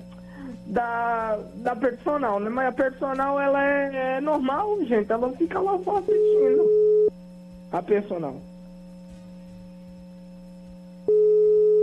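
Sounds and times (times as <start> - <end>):
speech: 0.7 - 6.9, 7.7 - 8.5
telephone ringing tone while a call is placed: 11.1 - 11.8.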